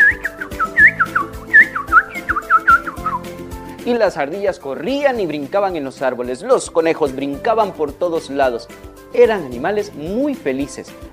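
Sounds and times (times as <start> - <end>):
person whistling a chirpy birdsong imitation: 0.0 - 3.3
soft steady musical backing: 0.0 - 11.1
speech: 3.9 - 11.1.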